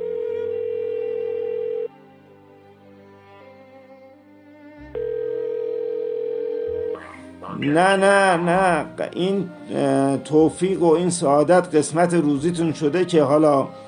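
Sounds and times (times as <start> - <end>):
mobile phone call ringback tone: 0.0 - 1.9, 5.0 - 7.0
speech: 7.6 - 13.8.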